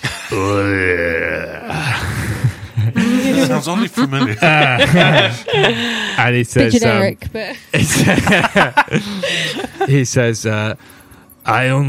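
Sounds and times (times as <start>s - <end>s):
voice imitating the deep groan of a giant Goliath creature: 0.0s - 3.6s
speech: 0.3s - 1.1s, 3.6s - 11.8s
laughter: 1.8s - 10.8s.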